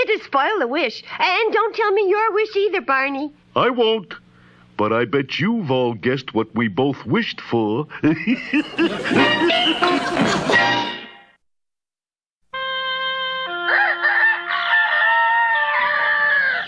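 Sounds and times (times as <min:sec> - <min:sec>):
speech: 0:00.2 - 0:04.2, 0:04.8 - 0:10.7
laughter: 0:07.9 - 0:11.0
rooster crowing as a morning wake-up call: 0:13.5 - 0:16.6.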